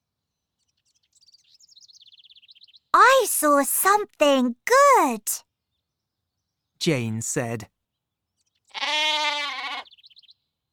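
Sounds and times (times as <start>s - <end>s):
small bird chirping: 0.6s - 3.6s, 9.9s - 10.5s
speech: 3.0s - 5.5s, 6.8s - 7.7s
sheep bleating: 8.7s - 9.9s.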